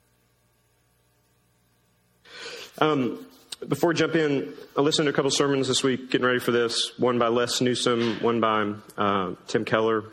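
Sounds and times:
single forceful nose blow: 2.3 - 2.8
speech: 2.8 - 10.1.

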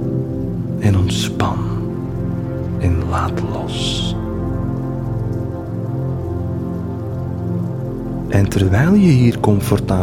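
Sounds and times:
rain pattering against a window on a cold winter night: 0.2 - 10.0
speech: 0.8 - 1.8, 2.8 - 4.2, 8.4 - 10.0.

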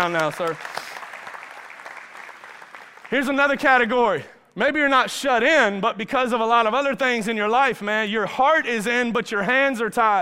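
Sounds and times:
speech: 0.0 - 0.8, 3.1 - 10.2
audience applause: 0.0 - 3.4.

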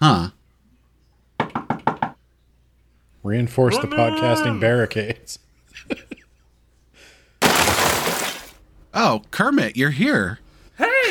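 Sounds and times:
pounding knocks on a door: 1.4 - 2.2
speech: 3.3 - 6.2, 9.0 - 11.1
door cracking apart with a splintering crash: 7.4 - 8.6.

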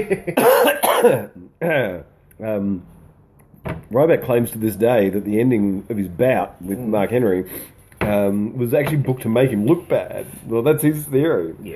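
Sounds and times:
speech: 0.0 - 3.0, 3.6 - 11.7
person coughing: 0.3 - 2.0.

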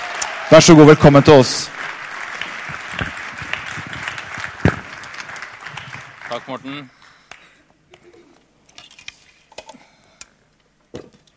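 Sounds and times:
Pentecostal church audience applauding to welcome a speaker: 0.0 - 7.6
speech: 0.5 - 1.8, 6.5 - 7.0.

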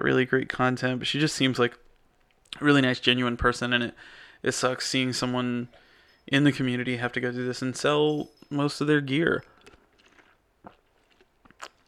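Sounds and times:
speech: 0.0 - 1.8, 2.5 - 9.5
person sipping tea: 9.4 - 11.8
slurping and swallowing: 9.5 - 11.8.

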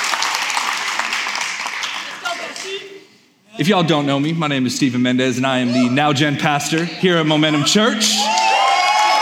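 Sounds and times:
large audience applauding: 0.0 - 2.9, 8.2 - 9.1
speech: 3.6 - 8.4.

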